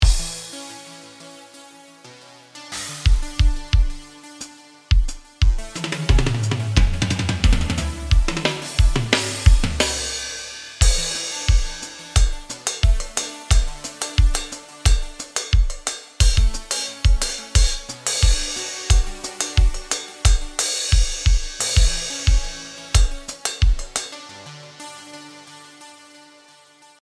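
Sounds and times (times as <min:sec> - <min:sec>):
drum: 0:00.0 - 0:00.4, 0:03.1 - 0:04.0, 0:04.9 - 0:24.2.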